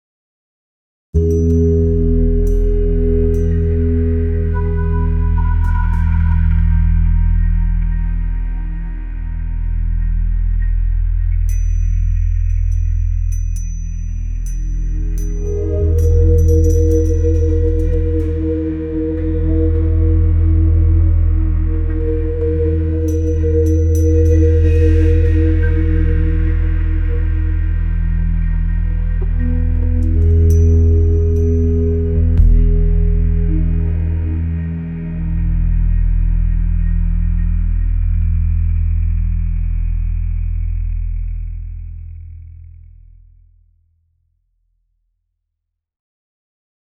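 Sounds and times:
deep ambient soundscape: 0:01.2 - 0:43.6.

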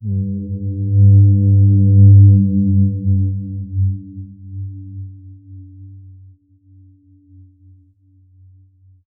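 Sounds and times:
low horn prison siren: 0:00.0 - 0:05.0.

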